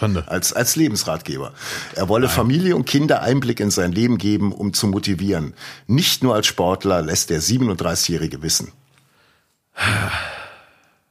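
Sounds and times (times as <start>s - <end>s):
speech: 0.0s - 8.9s, 9.8s - 10.3s
long exasperated sigh: 9.8s - 11.0s.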